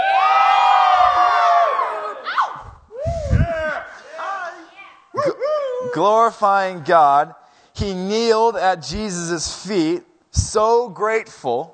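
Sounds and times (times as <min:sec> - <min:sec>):
church audience shouting and cheering: 0:00.0 - 0:04.2
speech: 0:06.0 - 0:11.7.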